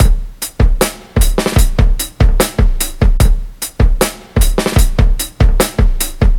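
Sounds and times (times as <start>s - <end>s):
drum loop: 0.0s - 6.3s.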